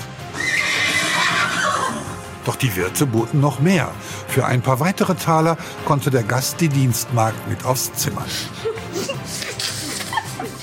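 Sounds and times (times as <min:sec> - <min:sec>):
horse neighing: 0:00.3 - 0:02.2
speech: 0:02.4 - 0:08.7
laughter: 0:08.2 - 0:10.6.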